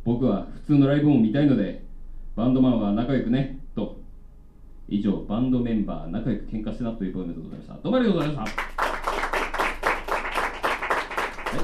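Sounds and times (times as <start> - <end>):
speech: 0.1 - 1.8, 2.4 - 4.0, 4.9 - 8.8
audience applause after a poetry reading: 8.2 - 11.6.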